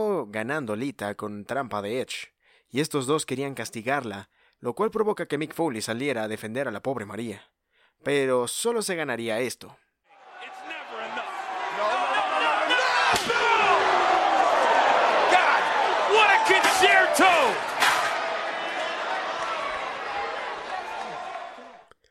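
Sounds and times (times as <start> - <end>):
speech: 0.3 - 9.8, 16.7 - 17.7
crowd roaring and cheering at a wrestling match: 10.1 - 21.9.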